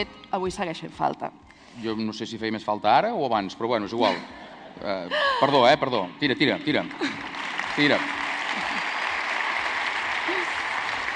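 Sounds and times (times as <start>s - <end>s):
speech: 0.0s - 8.2s
large audience applauding in a hall: 6.4s - 11.1s.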